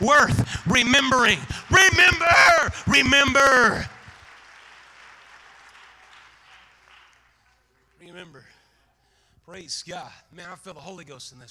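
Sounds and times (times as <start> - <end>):
speech: 0.0 - 3.9, 9.5 - 11.4
crowd clapping hands in applause: 0.0 - 8.0.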